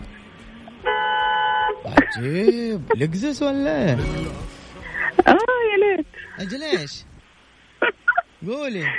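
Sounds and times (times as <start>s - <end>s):
Chinese-made jeep horn honking in Jeddah: 0.8s - 2.0s
speech: 2.1s - 4.5s, 5.3s - 7.1s, 8.4s - 8.9s.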